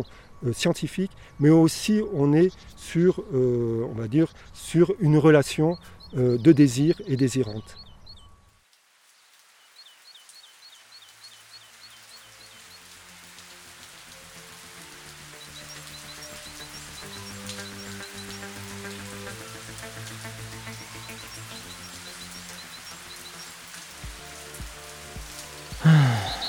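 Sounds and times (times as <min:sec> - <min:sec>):
speech: 0:00.0 - 0:07.8
rain falling: 0:08.5 - 0:26.4.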